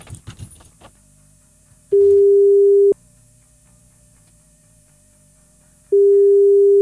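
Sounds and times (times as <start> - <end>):
rustling and clicking: 0.0 - 1.0
telephone ringback tone: 1.9 - 3.0, 5.9 - 6.8.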